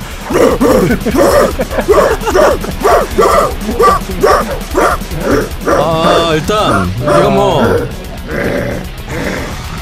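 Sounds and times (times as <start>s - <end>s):
dense distorted heavy metal music: 0.0s - 9.8s
two dogs barking: 0.2s - 8.2s
laughter: 0.3s - 8.4s
speech: 0.3s - 8.9s.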